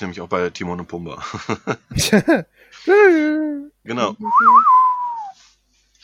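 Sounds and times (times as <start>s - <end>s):
speech: 0.0s - 4.7s
laughter: 1.2s - 3.2s
person whistling a film soundtrack melody: 4.2s - 5.4s.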